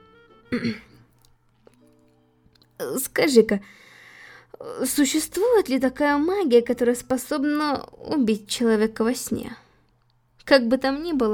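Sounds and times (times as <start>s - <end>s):
speech: 0.5s - 0.9s, 2.8s - 3.9s, 4.6s - 9.6s, 10.5s - 11.3s
throat clearing cough: 0.5s - 1.0s.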